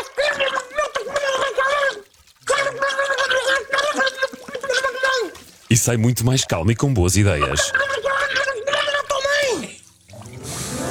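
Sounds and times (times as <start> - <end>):
person cursing with head under water: 0.0 - 5.4, 7.3 - 9.8
water bubbling and gargling: 0.0 - 10.9
speech: 5.7 - 8.0.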